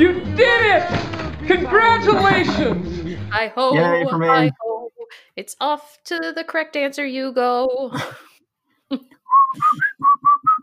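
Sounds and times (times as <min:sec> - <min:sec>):
laughter: 0:00.6 - 0:04.6
speech: 0:00.8 - 0:04.7, 0:05.4 - 0:08.3, 0:08.9 - 0:09.8
soft vocal sound: 0:02.7 - 0:05.1
person whistling a short bouncy tune: 0:09.3 - 0:10.6.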